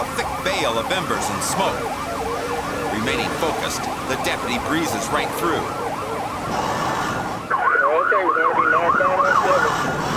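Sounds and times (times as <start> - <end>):
speech: 0.0 - 5.8, 6.5 - 6.9
car and road noise: 0.0 - 10.1
police cruiser siren wailing during a car chase: 0.0 - 10.1.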